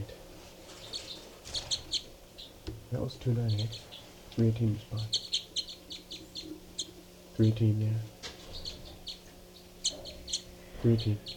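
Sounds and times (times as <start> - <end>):
birds chirping: 0.0 - 11.3
low steady hum: 0.0 - 11.3
speech: 2.9 - 5.2, 7.4 - 8.2, 10.8 - 11.3.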